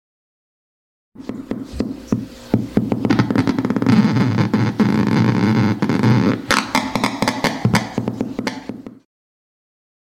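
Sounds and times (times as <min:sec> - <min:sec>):
electric eel discharges in an aquarium through a speaker: 0:01.6 - 0:08.8.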